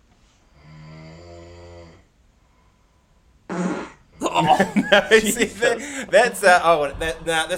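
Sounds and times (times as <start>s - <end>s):
raspy snore-like burst: 0.5s - 2.1s
buzzy fart: 3.5s - 4.2s
people talking and chuckling: 4.2s - 7.5s
speech: 4.4s - 7.5s.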